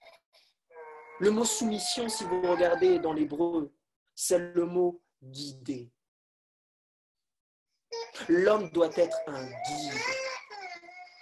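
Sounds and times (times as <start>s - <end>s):
little girl crying: 0.8s - 3.2s, 8.9s - 11.2s
speech: 1.2s - 6.0s, 8.2s - 10.2s.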